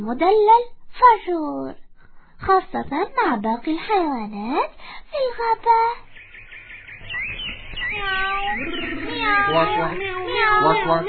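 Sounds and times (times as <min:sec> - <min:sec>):
speech: 0:00.0 - 0:01.8, 0:02.4 - 0:06.1, 0:07.2 - 0:11.0
voice imitating a high-pitched cat meow: 0:08.0 - 0:11.0.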